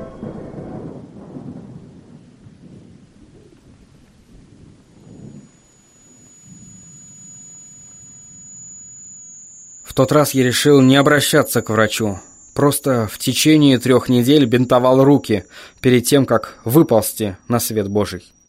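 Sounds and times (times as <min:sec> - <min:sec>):
deep rolling thunder from the direction of a bay: 0:00.0 - 0:05.6
speech: 0:10.0 - 0:18.4.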